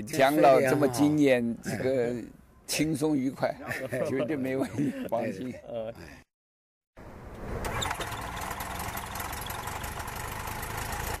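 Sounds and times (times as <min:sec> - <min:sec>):
speech: 0:00.0 - 0:06.2
laughter: 0:03.5 - 0:05.7
aircraft engine starting up: 0:07.6 - 0:11.1.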